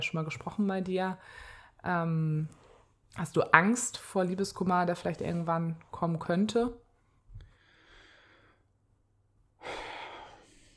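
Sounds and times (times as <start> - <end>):
speech: 0.0 - 6.8
heavy breathing: 7.4 - 8.7, 9.6 - 10.7.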